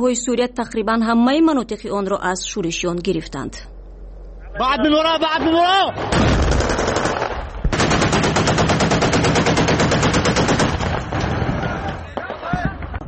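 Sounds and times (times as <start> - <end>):
speech: 0.0 - 3.7, 4.6 - 6.6
automatic gunfire during street fighting in Aleppo: 6.0 - 11.6.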